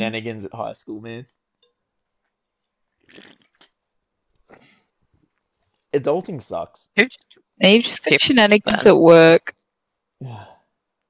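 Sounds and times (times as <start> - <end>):
speech: 0.0 - 1.4, 3.1 - 3.4, 5.9 - 9.6, 10.2 - 10.5
loud sip of a drink: 3.1 - 3.5.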